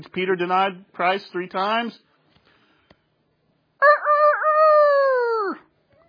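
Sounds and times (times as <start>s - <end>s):
speech: 0.0s - 2.1s
rooster crowing: 3.8s - 5.7s.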